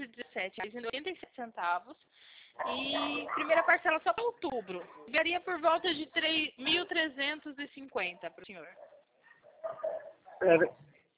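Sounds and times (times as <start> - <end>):
speech: 0.1 - 8.9, 9.7 - 10.9
dog barking and yelping in the background: 2.6 - 3.9, 8.7 - 10.6.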